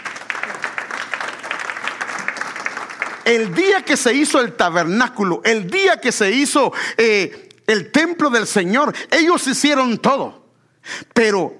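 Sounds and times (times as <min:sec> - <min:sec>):
church congregation clapping during a sermon: 0:00.0 - 0:04.4
speech: 0:03.3 - 0:11.5.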